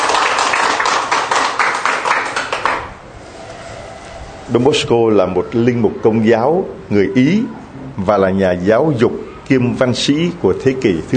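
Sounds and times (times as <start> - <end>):
crowd applauding for the feast day of Saint John Bosco: 0.0 - 3.1
speech: 4.5 - 11.1.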